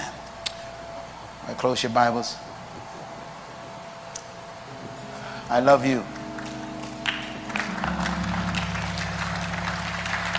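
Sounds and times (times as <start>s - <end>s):
speech: 1.5s - 2.5s, 5.5s - 6.2s
sustained organ-like chords: 4.2s - 10.3s
crowd clapping after a sermon: 6.2s - 10.3s.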